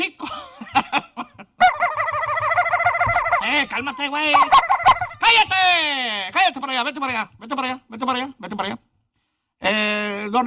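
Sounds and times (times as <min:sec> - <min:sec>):
chicken clucking: 0:01.6 - 0:05.5
speech: 0:03.6 - 0:08.9, 0:09.6 - 0:10.4.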